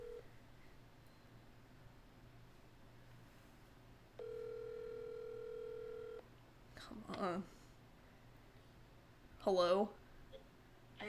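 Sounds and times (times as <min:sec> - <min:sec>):
outgoing phone call ringback tone: 0:00.0 - 0:00.2, 0:04.2 - 0:06.2
quiet hiss: 0:00.0 - 0:11.0
speech: 0:06.8 - 0:07.6, 0:09.4 - 0:10.0.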